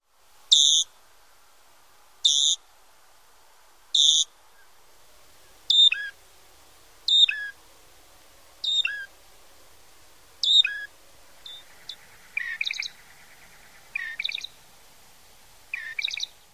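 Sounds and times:
bird song: 0.5 - 1.0, 2.2 - 2.6, 3.9 - 4.8, 5.4 - 6.2, 7.1 - 7.6, 8.6 - 9.1, 10.4 - 14.7, 15.7 - 16.5.

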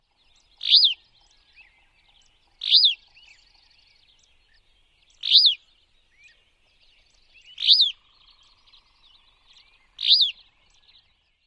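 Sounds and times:
rrreea calls: 0.6 - 1.0, 2.6 - 3.0, 5.2 - 5.6, 7.6 - 8.2, 9.9 - 10.5.

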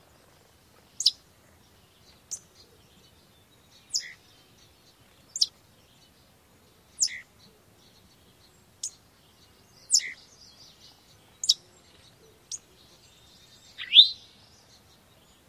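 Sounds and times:
Eastern Towhee chip calls: 0.9 - 1.2, 3.8 - 4.3, 5.3 - 5.6, 6.9 - 7.5, 9.9 - 10.3, 11.4 - 13.0, 13.7 - 14.4.

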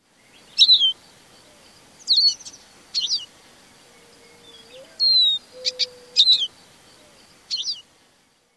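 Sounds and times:
Lesser Goldfinch calls: 0.4 - 1.0, 2.0 - 3.3, 4.4 - 6.6, 7.5 - 7.8.

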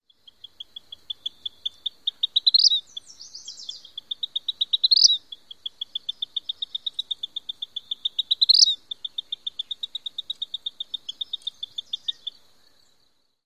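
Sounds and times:
Vermilion Flycatcher singing: 0.0 - 13.4.

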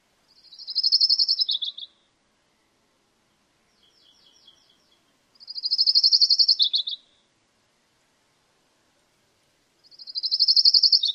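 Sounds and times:
Colima Warbler singing: 0.3 - 2.7, 3.6 - 7.2, 9.8 - 11.1.

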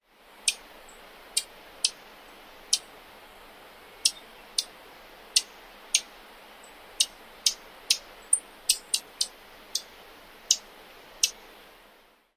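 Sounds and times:
bird chewp calls: 0.4 - 2.0, 2.7 - 2.9, 4.0 - 9.9, 10.5 - 11.4.

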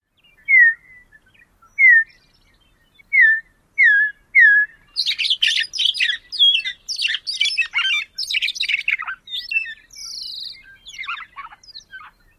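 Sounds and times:
bird flight song: 0.1 - 12.3
bird whistles: 0.5 - 1.2, 1.8 - 2.2, 3.1 - 12.2.

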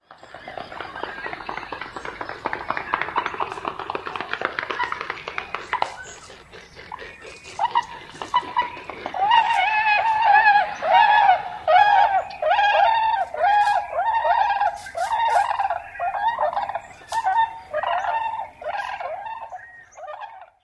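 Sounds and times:
Tundra Swan wing-flapping in flight: 0.1 - 19.4
Tundra Swan calling: 4.6 - 20.6.

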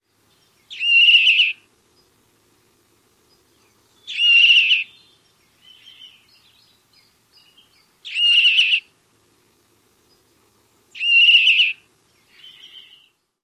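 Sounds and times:
juvenile call: 0.7 - 1.7, 3.6 - 6.5, 7.4 - 9.0, 10.9 - 13.2.

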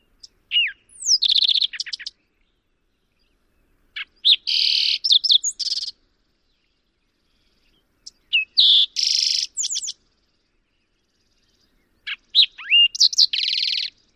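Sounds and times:
bird singing: 0.0 - 14.1.

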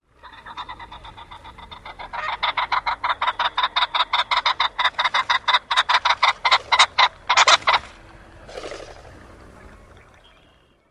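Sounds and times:
ring-necked pheasant flight call: 0.0 - 10.8.

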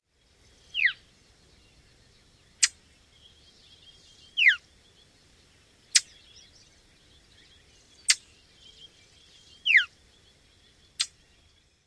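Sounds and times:
Brown Thrasher tee yoo calls: 0.7 - 1.0, 2.5 - 4.6, 5.8 - 9.9.

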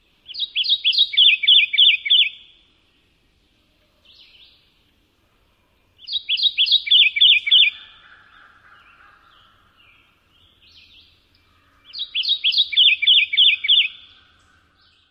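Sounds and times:
two-part bird song: 0.0 - 5.0, 5.8 - 15.1.

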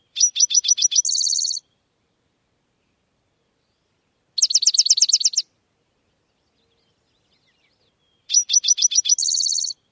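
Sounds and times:
Spotted Towhee singing: 0.0 - 2.0, 2.8 - 9.8.

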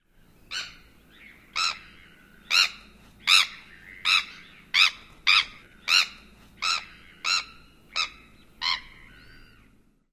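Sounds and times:
Bonaparte's Gull typical grating calls: 2.5 - 9.2.

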